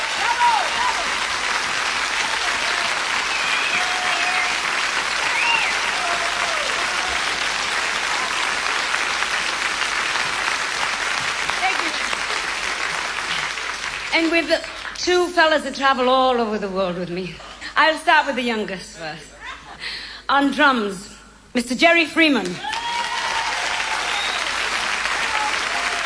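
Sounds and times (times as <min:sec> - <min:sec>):
audience whistles and cheers: 0:00.0 - 0:01.2, 0:02.2 - 0:08.4, 0:22.6 - 0:26.0
large audience applauding an orchestra: 0:00.0 - 0:15.0, 0:22.6 - 0:26.0
speech: 0:14.2 - 0:19.3, 0:20.3 - 0:22.7.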